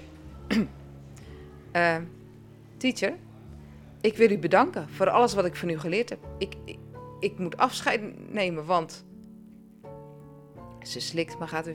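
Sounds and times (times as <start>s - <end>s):
speech: 0.5s - 0.8s, 1.8s - 2.2s, 2.8s - 3.3s, 4.0s - 9.1s, 10.8s - 11.7s
woman coughing: 0.5s - 0.8s.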